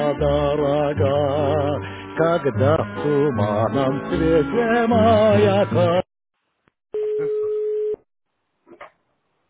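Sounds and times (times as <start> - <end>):
speech: 0.2 - 1.5, 2.2 - 6.0
electronic telephone ring tone for an incoming call: 7.0 - 8.0.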